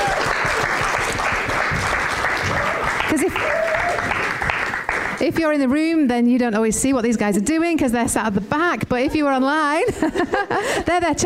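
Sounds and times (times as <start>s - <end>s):
church audience applauding: 0.0s - 5.2s
speech: 5.2s - 11.2s.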